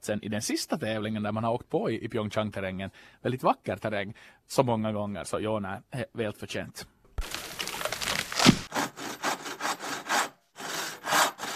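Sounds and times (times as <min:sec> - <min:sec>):
speech: 0:00.0 - 0:06.9
handsaw cutting through wood: 0:07.2 - 0:11.5.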